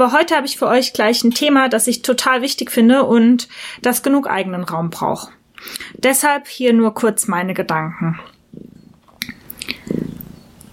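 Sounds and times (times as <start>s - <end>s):
speech: 0.0s - 8.7s
cat purring on a lap: 9.7s - 10.5s.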